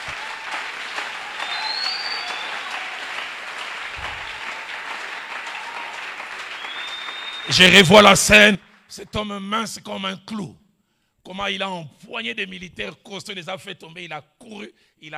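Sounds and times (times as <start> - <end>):
audience applauding: 0.0 - 8.8
speech: 7.5 - 10.6, 11.3 - 15.1.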